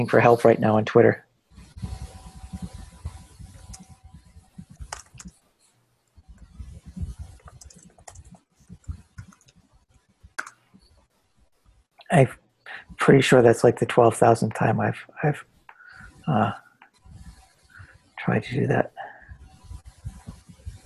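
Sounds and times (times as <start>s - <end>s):
speech: 0.0s - 1.2s, 12.2s - 12.4s, 13.1s - 15.5s, 16.3s - 16.6s, 18.3s - 19.0s
typing on a computer keyboard: 4.6s - 5.4s, 6.4s - 9.7s, 10.4s - 10.6s.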